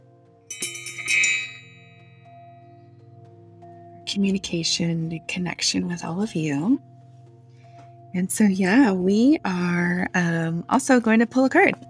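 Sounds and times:
small bell ringing: 0.5 - 2.7
speech: 4.1 - 6.9, 8.1 - 11.8.

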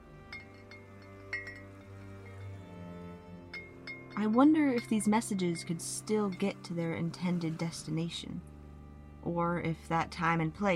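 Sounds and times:
low steady hum: 0.0 - 10.7
glass bottles clinking and chiming against each other: 0.2 - 6.8
speech: 4.2 - 8.5, 9.2 - 10.7.

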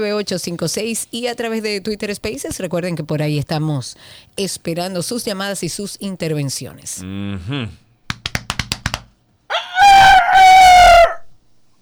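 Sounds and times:
speech: 0.0 - 7.8
sharp taps: 8.1 - 9.2
rooster crowing: 9.5 - 11.3.

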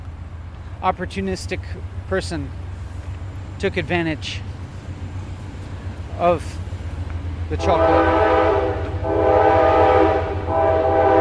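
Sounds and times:
trains passing on either side: 0.0 - 11.1
speech: 0.8 - 2.6, 3.6 - 4.5, 6.2 - 6.6, 7.5 - 8.4
sustained blaring train horn: 7.5 - 11.1.

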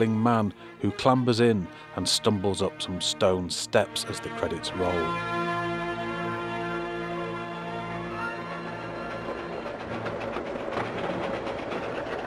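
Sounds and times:
speech: 0.0 - 5.5
train with an open carriage rolling on rails through countryside: 0.0 - 12.2
rhythmic clattering of train wheels on rails: 7.3 - 12.2.

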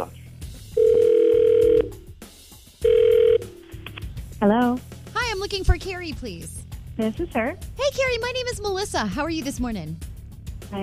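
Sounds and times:
ringback tone of an outgoing phone call: 0.8 - 2.0, 2.8 - 3.7
speech: 4.4 - 10.1.

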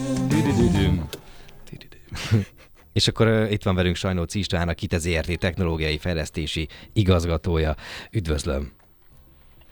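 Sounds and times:
radio station jingle: 0.0 - 1.8
speech: 2.1 - 8.8.

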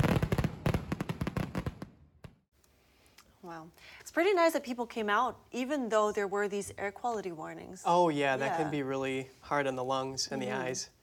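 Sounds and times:
fireworks display crackling with pops and bangs: 0.0 - 2.5
speech: 3.5 - 11.0.

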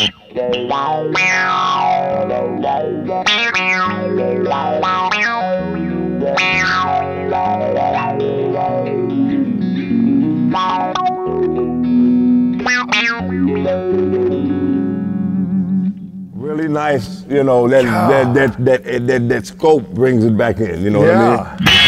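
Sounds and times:
speech: 0.0 - 5.0, 16.7 - 21.7
electric guitar played through an envelope filter effect: 0.0 - 16.4, 21.3 - 21.8.

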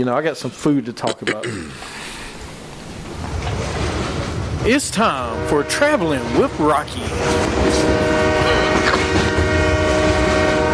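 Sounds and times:
speech: 0.0 - 2.0, 4.6 - 8.2
rumble of a rolling train: 2.5 - 10.7
train horn blaring: 4.7 - 10.7.

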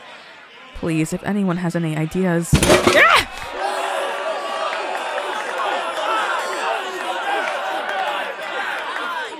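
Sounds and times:
crowd of young frat boys shouting and chattering at a summer camp: 0.0 - 0.7, 3.4 - 9.3
speech: 0.8 - 3.3
thumps: 2.5 - 3.4.

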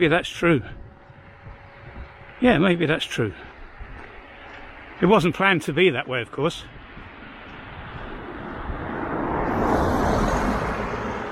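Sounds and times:
speech: 0.0 - 0.8, 2.4 - 3.5, 5.0 - 6.8
steady road rumble of tire and engine noise: 0.0 - 11.3
vehicle passing by: 6.8 - 11.3.

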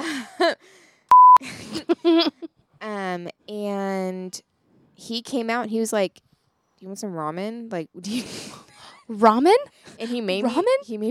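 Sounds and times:
speech: 0.4 - 0.8, 1.4 - 11.1
loud steady electronic censor bleep: 1.1 - 1.4
people laughing: 1.4 - 2.5.

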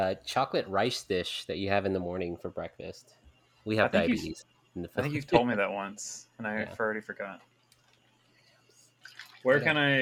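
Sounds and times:
speech: 0.0 - 7.5, 9.1 - 10.0
drink pouring into a glass: 9.0 - 10.0.

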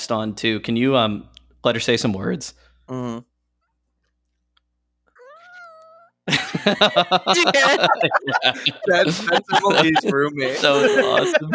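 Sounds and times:
speech: 0.1 - 3.3, 6.3 - 11.5
drawn-out cat meow: 5.2 - 6.2
people laughing loudly: 6.3 - 11.5.

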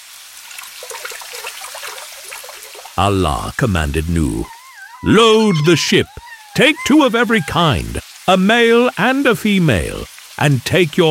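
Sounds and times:
water bubbling and gushing up: 0.4 - 8.0
speech: 3.0 - 11.1.

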